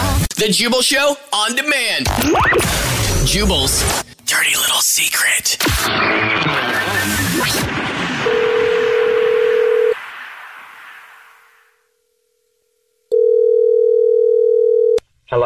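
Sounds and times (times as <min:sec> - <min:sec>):
speech: 0:00.4 - 0:07.8
telephone dialing out to return a call: 0:08.3 - 0:10.0, 0:13.1 - 0:15.0.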